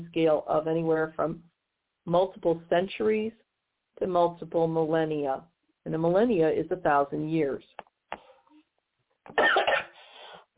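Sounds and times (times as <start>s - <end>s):
speech: 0.1s - 3.4s, 4.0s - 7.9s, 9.3s - 9.6s
person coughing from asthma: 9.3s - 10.1s.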